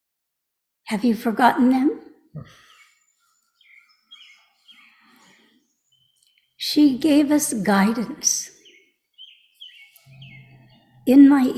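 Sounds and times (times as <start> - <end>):
speech: 0.9 - 2.6, 6.6 - 8.6, 11.1 - 11.5
birds chirping and tweeting: 2.3 - 11.5.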